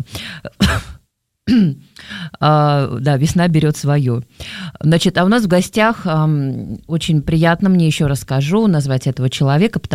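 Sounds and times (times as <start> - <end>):
speech: 0.0 - 0.9, 1.5 - 9.9
woman coughing and clearing her throat in a studio: 0.5 - 1.8.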